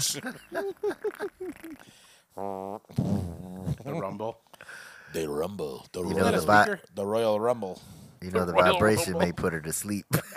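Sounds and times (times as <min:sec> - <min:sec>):
speech: 0:00.0 - 0:10.3
man imitating fart sounds with his mouth: 0:02.4 - 0:04.2.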